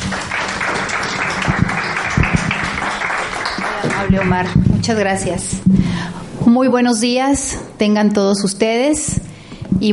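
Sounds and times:
audience applause welcoming a speaker: 0:00.0 - 0:04.7
speech: 0:04.1 - 0:09.2, 0:09.8 - 0:09.9.

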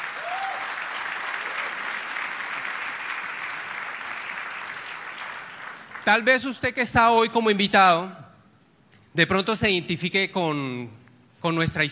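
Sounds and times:
audience applause welcoming guests: 0:00.0 - 0:06.3
speech: 0:06.1 - 0:08.2, 0:09.2 - 0:11.9.

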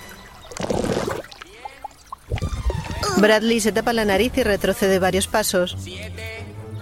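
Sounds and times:
water trickling and splashing as a platypus emerges: 0:00.0 - 0:04.2
bubbly rising drip sounds: 0:00.5 - 0:03.4
speech: 0:03.2 - 0:06.2.

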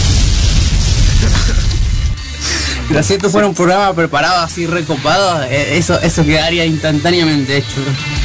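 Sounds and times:
explosion effect with deep rumbling boom: 0:00.0 - 0:02.4
low rumble: 0:00.0 - 0:03.0
crackling debris: 0:00.0 - 0:03.4
speech: 0:02.9 - 0:08.2.

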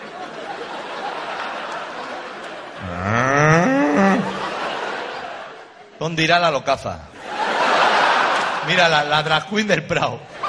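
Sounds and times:
laughter: 0:00.0 - 0:06.0, 0:07.2 - 0:09.3, 0:10.2 - 0:10.4
speech: 0:02.8 - 0:03.2, 0:06.1 - 0:07.1, 0:08.7 - 0:10.3
person imitating a cow mooing: 0:02.8 - 0:04.4.

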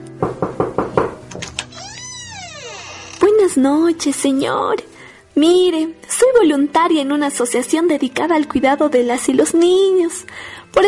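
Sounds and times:
speech: 0:00.2 - 0:00.4, 0:03.6 - 0:10.8
knocking on a door: 0:00.2 - 0:01.2
high squeaky tone: 0:01.7 - 0:03.2.

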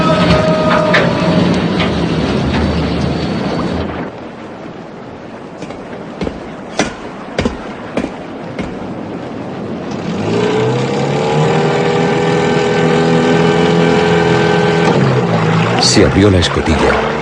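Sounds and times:
motorboat engine starting up and droning: 0:00.0 - 0:17.2
sharp knocks: 0:05.6 - 0:09.0
speech: 0:16.0 - 0:17.1.

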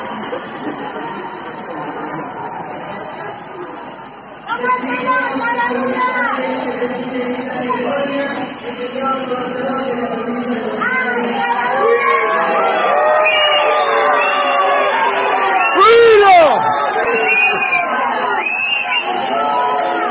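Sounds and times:
large stadium crowd booing and shouting angrily: 0:00.0 - 0:20.0.

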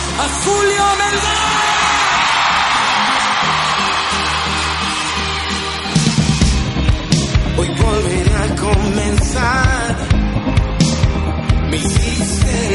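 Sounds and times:
sharper bursts of crowd yelling: 0:00.0 - 0:07.2
large audience shouting and cheering in welcome: 0:00.0 - 0:12.7
speech: 0:00.2 - 0:01.7.

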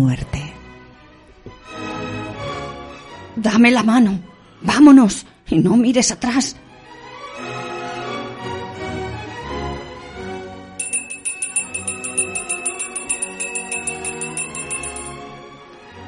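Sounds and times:
speech: 0:00.0 - 0:00.4, 0:03.4 - 0:06.7
bright high tolling bell ringing in quick steady strikes: 0:10.8 - 0:15.2.

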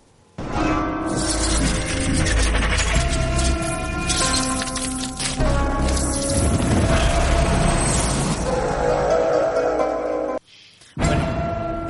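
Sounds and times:
loud brooding TV series opening theme music: 0:00.4 - 0:10.4.

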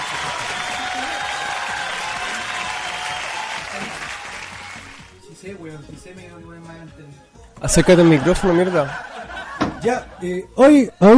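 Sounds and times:
crowd applauding: 0:00.0 - 0:05.2
speech: 0:05.5 - 0:09.1, 0:09.8 - 0:11.1
laughter: 0:07.6 - 0:10.4.

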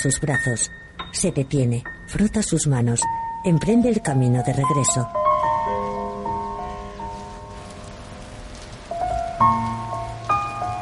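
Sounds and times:
speech: 0:00.0 - 0:05.2
sustained melodic notes: 0:00.1 - 0:10.8
heavy rain falling on a village: 0:03.0 - 0:10.8.

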